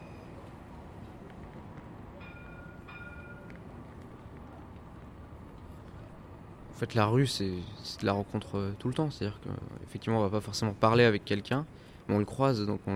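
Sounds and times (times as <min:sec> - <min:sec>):
high ringing tones: 0:00.0 - 0:00.4, 0:02.2 - 0:03.5
tram rumbling at a city tram stop: 0:00.0 - 0:11.6
speech: 0:06.8 - 0:12.9.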